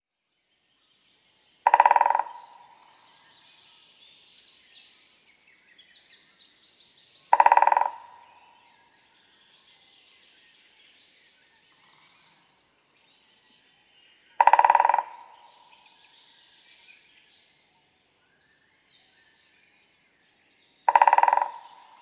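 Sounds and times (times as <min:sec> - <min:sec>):
great spotted woodpecker in the forest: 0:01.2 - 0:04.6, 0:07.2 - 0:10.3, 0:11.0 - 0:22.0.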